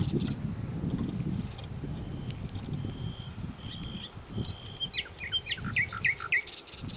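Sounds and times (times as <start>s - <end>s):
Luscinia megarhynchos common nightingale singing: 0.0s - 6.9s.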